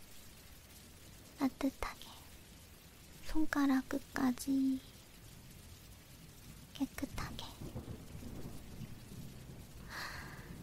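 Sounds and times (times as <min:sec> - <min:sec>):
steady rain: 0:00.0 - 0:10.6
low thunder rumbling: 0:00.1 - 0:10.6
speech: 0:01.4 - 0:02.0, 0:03.4 - 0:04.9, 0:06.8 - 0:07.9.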